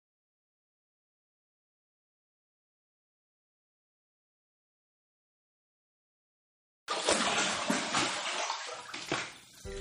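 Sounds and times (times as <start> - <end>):
bath water splashing in a tub: 6.9 - 9.8.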